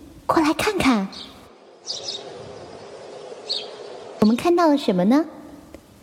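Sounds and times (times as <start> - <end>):
low steady rumble: 0.0 - 6.0
speech: 0.3 - 2.2, 4.2 - 5.4
baby bird tweeting: 0.6 - 4.5.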